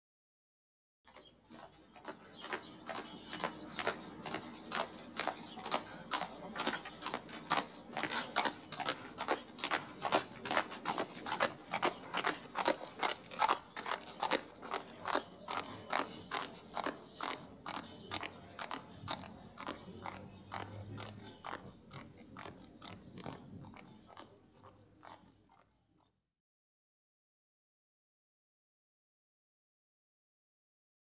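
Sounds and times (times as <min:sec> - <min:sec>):
horse hooves on asphalt: 0:01.1 - 0:25.7.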